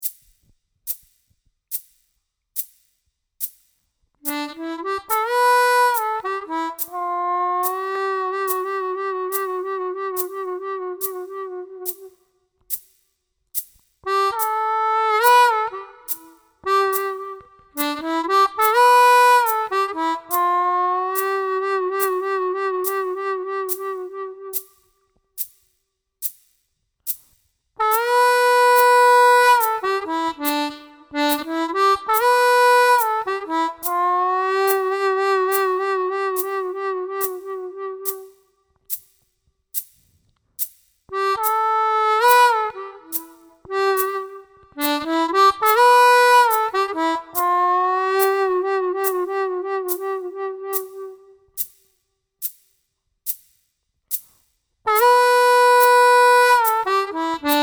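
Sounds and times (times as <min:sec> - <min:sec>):
slow harmonica riff in C: 0:04.2 - 0:12.2, 0:14.0 - 0:24.7, 0:27.8 - 0:38.4, 0:41.1 - 0:51.6, 0:54.9 - 0:57.6.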